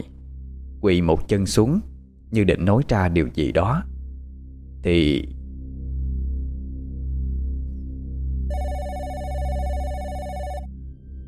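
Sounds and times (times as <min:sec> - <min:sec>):
low droning background: 0:00.0 - 0:11.2
speech: 0:00.8 - 0:03.9, 0:04.8 - 0:05.4
telephone ringing loudly: 0:08.5 - 0:10.7.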